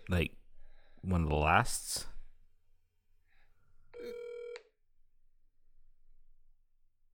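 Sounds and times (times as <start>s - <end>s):
speech: 0.1s - 0.4s, 1.0s - 2.1s
outgoing phone call ringing tone: 4.0s - 4.7s.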